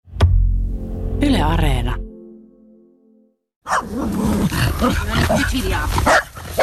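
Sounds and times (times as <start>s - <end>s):
speech: 1.4s - 2.0s, 3.9s - 6.6s
dog barking and growling in Pori Finland: 3.6s - 6.6s.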